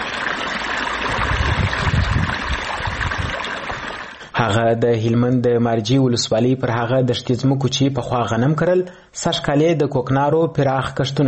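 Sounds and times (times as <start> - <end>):
irrigation water flowing onto freshly sown poppy fields in Marja district, Helmand: 0.0 - 4.3
speech: 4.4 - 11.2.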